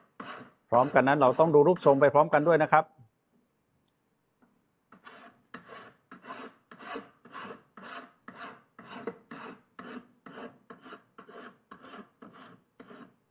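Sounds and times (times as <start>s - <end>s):
hand file rough filing bare silver metal: 0.0s - 2.7s, 4.9s - 13.2s
speech: 0.7s - 3.0s.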